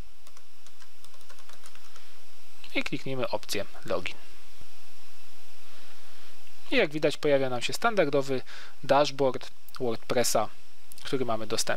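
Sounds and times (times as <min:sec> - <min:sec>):
steady hiss: 0:00.0 - 0:11.7
typing a username on a computer keyboard: 0:00.2 - 0:02.0
speech: 0:02.8 - 0:04.3, 0:06.7 - 0:11.7.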